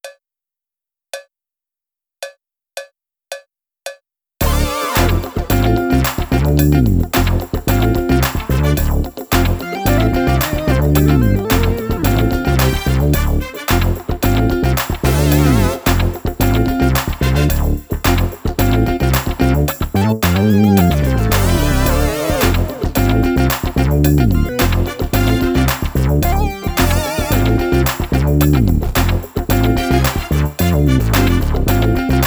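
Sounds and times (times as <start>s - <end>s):
retro funk music without drums: 4.4s - 32.2s.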